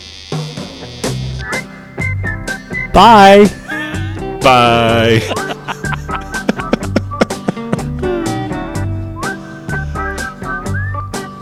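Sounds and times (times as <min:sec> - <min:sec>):
whistled tune from a rock album: 0:01.4 - 0:04.3, 0:08.2 - 0:11.4
speech: 0:02.9 - 0:03.6, 0:04.4 - 0:05.4
laughter: 0:03.4 - 0:08.2.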